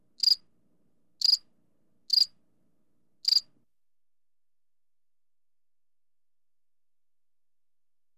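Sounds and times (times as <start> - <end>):
cicada chirps: 0.2 - 0.4, 1.2 - 1.4, 2.1 - 2.3, 3.2 - 3.5.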